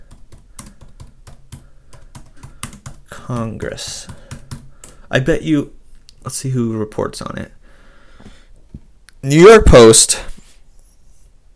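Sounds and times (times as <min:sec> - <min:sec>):
typing a search on a computer keyboard: 0:00.0 - 0:05.0
speech: 0:03.2 - 0:04.2, 0:05.1 - 0:07.6, 0:09.2 - 0:10.3.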